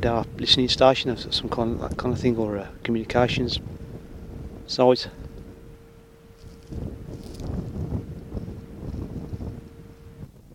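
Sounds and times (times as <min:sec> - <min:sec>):
speech: 0:00.0 - 0:03.8, 0:04.7 - 0:05.2
faint constant tone: 0:00.0 - 0:10.5
wind blowing across a hilltop near a radar station buffeting the microphone: 0:00.0 - 0:10.5.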